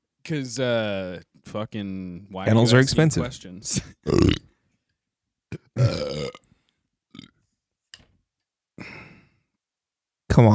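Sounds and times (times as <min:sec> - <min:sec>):
speech: 0:00.3 - 0:04.4, 0:10.4 - 0:10.5
loud drawn-out burp: 0:04.0 - 0:04.5, 0:05.5 - 0:06.5, 0:07.1 - 0:07.4
short guttural bursts: 0:04.1 - 0:04.5
breathy exhales: 0:08.8 - 0:09.4.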